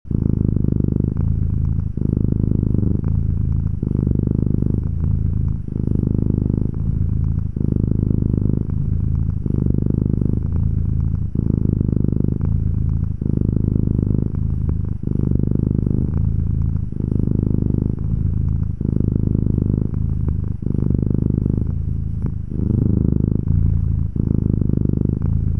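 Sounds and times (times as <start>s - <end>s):
cat purring slow and warm: 0.0s - 25.5s.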